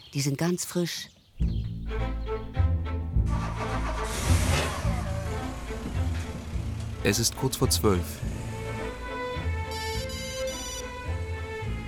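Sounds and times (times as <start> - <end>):
speech: 0.1 - 2.1, 7.0 - 8.4
music: 1.3 - 11.8
mobile phone ringing: 9.7 - 11.1.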